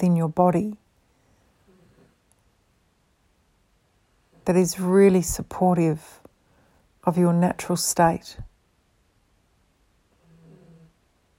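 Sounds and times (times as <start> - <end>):
speech: 0.0 - 0.8, 4.5 - 6.2, 7.0 - 8.5
small dog snoring: 1.6 - 2.2, 10.1 - 11.1.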